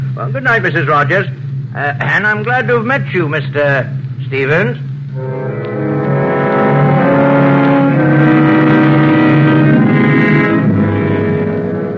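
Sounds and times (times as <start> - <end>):
speech: 0.2 - 5.5
car engine droning while driving: 5.1 - 11.9.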